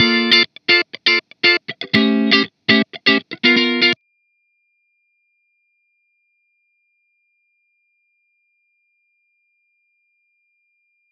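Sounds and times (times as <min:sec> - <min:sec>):
dry amp funk guitar: 0:00.0 - 0:04.0.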